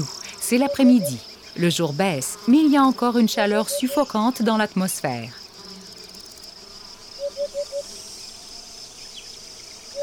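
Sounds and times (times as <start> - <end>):
cicadas singing in summer heat on the grassy plain of Cabaneros: 0.0 - 10.0
speech: 0.5 - 5.4.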